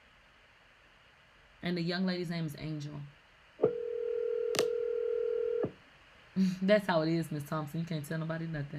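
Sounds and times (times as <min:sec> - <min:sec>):
speech: 0:01.6 - 0:03.2, 0:06.4 - 0:08.7
steady telephone tone: 0:03.6 - 0:05.7.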